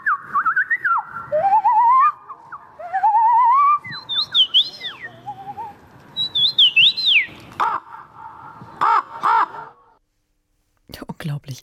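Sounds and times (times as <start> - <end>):
person imitating wren song with whistled sweeps trills and chirps: 0.0 - 7.4
speech: 11.4 - 11.6.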